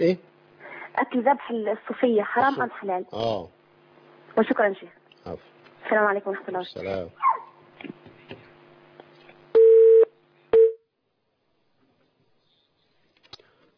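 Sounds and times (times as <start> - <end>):
speech: 0.0 - 0.3, 1.0 - 3.6, 4.4 - 7.3
telephone line beeps on a call-in phone line as an incoming call connects: 9.6 - 10.8.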